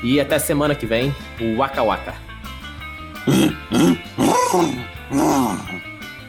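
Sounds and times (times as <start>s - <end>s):
speech: 0.0s - 2.3s, 3.2s - 5.9s
man imitating hippopotamus grunting bellows: 3.2s - 5.9s.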